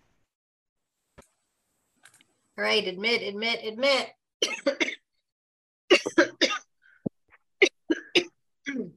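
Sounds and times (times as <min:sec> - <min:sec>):
speech: 0:02.6 - 0:05.0
harsh coughing fit: 0:04.4 - 0:05.1, 0:05.9 - 0:06.7, 0:07.6 - 0:08.9.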